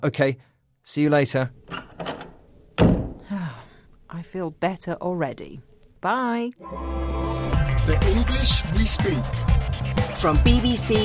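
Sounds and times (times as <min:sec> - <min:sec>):
speech: 0:00.0 - 0:01.8, 0:04.1 - 0:07.0, 0:07.9 - 0:11.0
door being pulled shut: 0:01.7 - 0:03.3.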